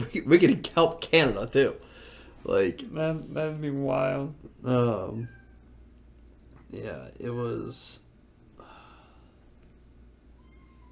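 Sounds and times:
speech: 0:00.0 - 0:05.4, 0:06.7 - 0:08.0
steady low hum: 0:00.0 - 0:10.9
cat meowing: 0:05.2 - 0:05.6, 0:10.4 - 0:10.9.

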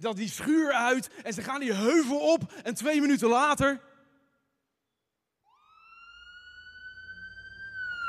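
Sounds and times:
speech: 0:00.0 - 0:03.9
ambulance siren passing on its way to the hospital: 0:05.4 - 0:08.0.

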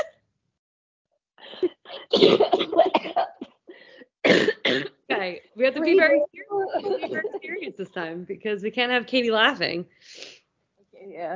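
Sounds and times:
person coughing: 0:01.5 - 0:05.0, 0:06.7 - 0:07.7
speech: 0:01.6 - 0:02.6, 0:05.6 - 0:10.4, 0:11.0 - 0:11.3
laughter: 0:05.7 - 0:08.0.

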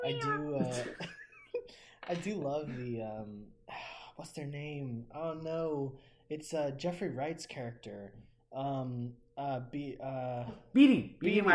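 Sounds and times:
person imitating a cat meow: 0:00.0 - 0:00.8
speech: 0:00.1 - 0:01.0, 0:02.1 - 0:11.5.

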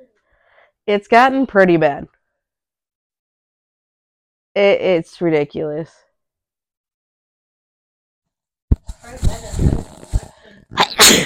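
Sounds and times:
speech: 0:00.8 - 0:02.2, 0:04.6 - 0:06.0, 0:09.1 - 0:09.9
sneeze: 0:10.8 - 0:11.2.

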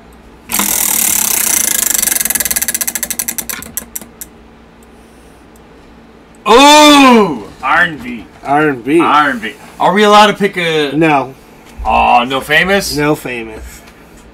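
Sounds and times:
prize wheel spinning during a music game, pointer ticking: 0:00.5 - 0:04.0
person speaking loudly: 0:06.5 - 0:13.6
speech: 0:06.5 - 0:13.7.

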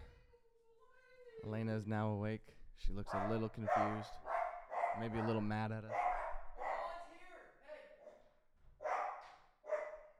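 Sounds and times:
speech: 0:01.4 - 0:04.3, 0:05.0 - 0:06.0
dog barking in loud yelps: 0:03.1 - 0:07.0, 0:08.8 - 0:10.1.

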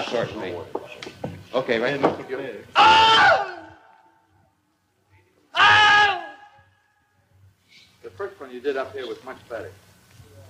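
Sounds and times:
speech: 0:00.1 - 0:03.6, 0:08.0 - 0:09.8
voice imitating the Wilhelm scream: 0:02.8 - 0:04.0, 0:05.5 - 0:06.6.

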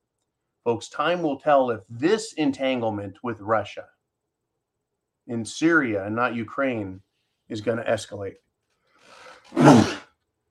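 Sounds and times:
speech: 0:00.6 - 0:04.0, 0:05.3 - 0:08.4, 0:09.0 - 0:10.0
breathy intake before a sneeze: 0:09.0 - 0:10.1
person sneezing: 0:09.2 - 0:10.2.

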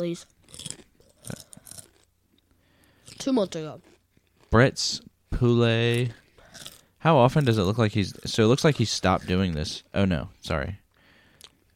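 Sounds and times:
speech: 0:00.0 - 0:01.4, 0:03.2 - 0:03.9, 0:04.5 - 0:06.2, 0:07.0 - 0:10.8
crunching and chewing: 0:00.1 - 0:04.7, 0:05.8 - 0:09.8, 0:11.3 - 0:11.7.

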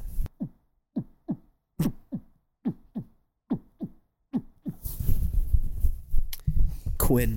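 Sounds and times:
heartbeat picked up by the microphone: 0:00.2 - 0:07.2
loud rustling and scraping noise on the microphone: 0:04.8 - 0:06.9
speech: 0:07.1 - 0:07.3.

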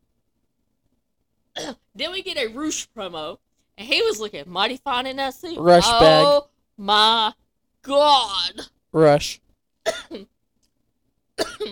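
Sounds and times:
speech: 0:02.0 - 0:10.3
harsh throaty coughing fit: 0:09.9 - 0:10.3, 0:11.4 - 0:11.7.

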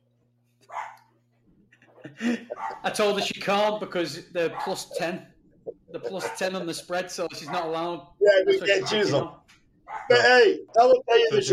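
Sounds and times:
low electrical hum: 0:00.0 - 0:11.5
dog barking: 0:00.7 - 0:01.1, 0:02.5 - 0:03.0, 0:04.5 - 0:05.0, 0:06.0 - 0:06.6, 0:07.4 - 0:07.8, 0:08.7 - 0:09.1, 0:09.9 - 0:10.3
laughter: 0:01.8 - 0:05.2, 0:05.8 - 0:09.2, 0:10.1 - 0:11.5
speech: 0:02.0 - 0:05.3, 0:05.9 - 0:09.4, 0:10.0 - 0:11.5.

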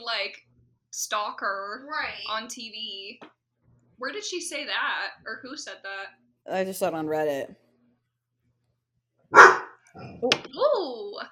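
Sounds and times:
speech: 0:00.1 - 0:03.4, 0:04.0 - 0:07.6, 0:10.0 - 0:11.2
dog barking: 0:09.3 - 0:09.8.

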